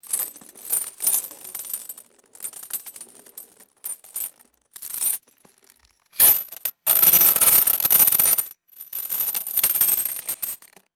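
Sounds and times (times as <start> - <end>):
metal coins vibrating and clinking on dry ice: 6.2 - 9.6.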